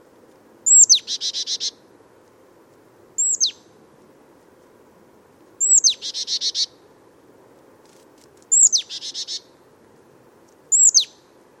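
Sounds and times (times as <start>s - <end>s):
marsh tit Poecile palustris calls: 0.7s - 1.8s, 3.2s - 3.6s, 5.6s - 6.7s, 8.5s - 9.5s, 10.7s - 11.1s.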